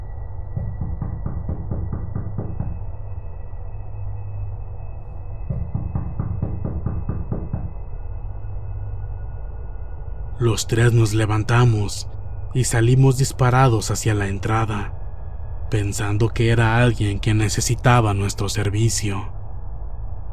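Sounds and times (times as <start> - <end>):
steady low hum: 0.0 - 20.3
frantic rapid hard knocking on a door: 0.6 - 2.9, 5.5 - 7.8
speech: 10.4 - 15.0, 15.7 - 19.4.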